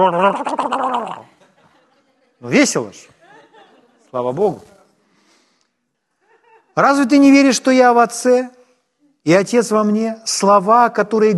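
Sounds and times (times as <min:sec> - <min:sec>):
person imitating a turkey gobble: 0:00.0 - 0:01.3
speech: 0:00.0 - 0:01.3, 0:02.4 - 0:03.2, 0:04.1 - 0:04.7, 0:06.8 - 0:08.6, 0:09.2 - 0:11.3
laughter: 0:00.0 - 0:02.4, 0:03.1 - 0:04.2, 0:06.2 - 0:06.8.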